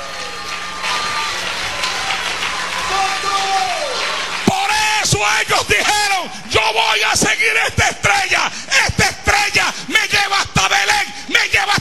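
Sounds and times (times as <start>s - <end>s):
congregation clapping: 0.0s - 6.0s
crowd cheering: 0.0s - 7.2s
speech: 5.2s - 11.7s.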